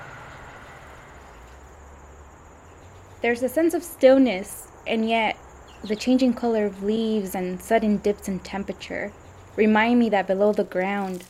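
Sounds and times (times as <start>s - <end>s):
metro train rolling along the railway beside an open grass field at a farm: 0.0s - 2.6s
constant mechanical whine of a metro train: 0.0s - 2.8s
low wheel thrum of a metro train: 0.0s - 3.0s
speech: 3.2s - 11.2s.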